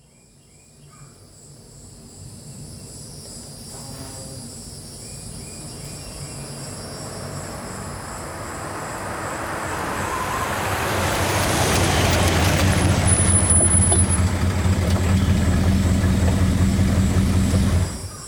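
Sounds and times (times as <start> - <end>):
car engine rumbling: 6.6 - 18.2
tires crunching over loose gravel: 7.0 - 18.1.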